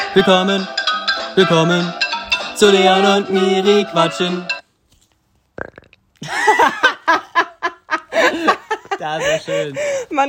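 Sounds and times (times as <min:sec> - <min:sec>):
speech: 0:00.2 - 0:00.8, 0:01.4 - 0:02.0, 0:02.6 - 0:04.5, 0:05.6 - 0:07.2, 0:09.0 - 0:10.2
fart: 0:05.6 - 0:06.0
laughter: 0:06.2 - 0:10.0.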